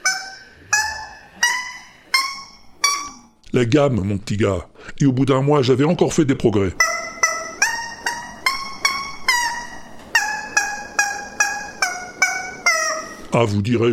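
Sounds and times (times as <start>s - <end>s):
squeaky plastic chicken toy squawking a tune: 0.0s - 3.4s, 6.8s - 13.3s
speech: 3.6s - 6.9s, 13.4s - 13.9s.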